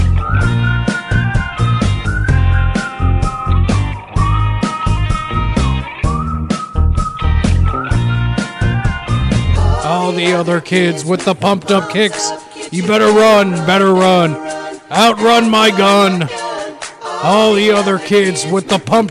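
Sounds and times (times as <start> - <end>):
whistled melody: 0.0 - 9.6
speech: 10.2 - 16.4, 17.2 - 19.0.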